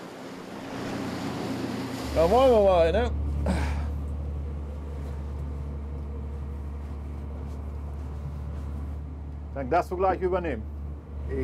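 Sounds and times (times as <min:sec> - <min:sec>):
choppy sea waves churning and sloshing: 0:00.0 - 0:09.6
low rumble: 0:01.8 - 0:11.4
speech: 0:02.2 - 0:03.8, 0:09.6 - 0:10.7, 0:11.3 - 0:11.4.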